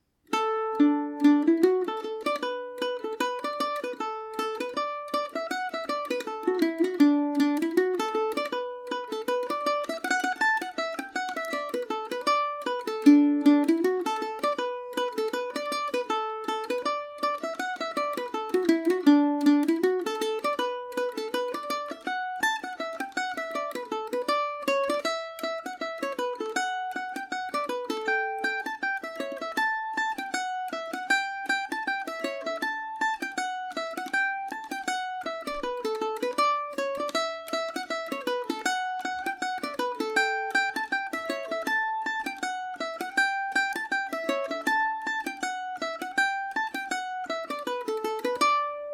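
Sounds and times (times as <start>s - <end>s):
Paris Swing Macaferri mandolin playing an Irish reel in D major: 0.0s - 48.9s.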